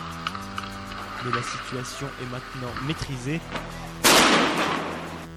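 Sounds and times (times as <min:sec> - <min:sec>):
speech: 0:01.2 - 0:03.9
powerful firework bang near a fire engine: 0:04.0 - 0:05.2.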